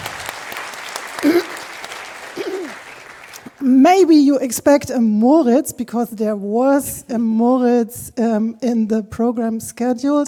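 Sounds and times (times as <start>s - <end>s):
audience applauding: 0.0s - 3.6s
speech: 3.6s - 10.2s.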